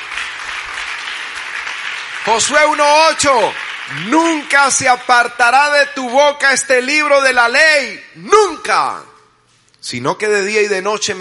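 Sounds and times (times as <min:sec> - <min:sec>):
large crowd applauding loudly: 0:00.0 - 0:05.3
speech: 0:02.3 - 0:09.1, 0:09.8 - 0:11.1.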